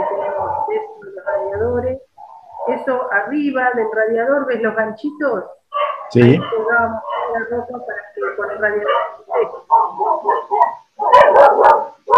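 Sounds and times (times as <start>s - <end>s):
dog barking: 0.0s - 1.4s, 5.7s - 7.5s, 8.2s - 12.1s
speech: 2.9s - 10.4s.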